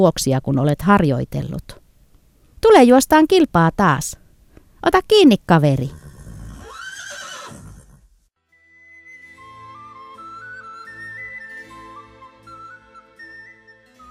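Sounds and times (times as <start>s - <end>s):
speech: 0.0s - 1.8s, 2.6s - 4.2s, 4.8s - 6.0s
horse whinnying: 5.9s - 8.2s
light instrumental music with gentle melody and soft low pulses: 8.4s - 14.1s.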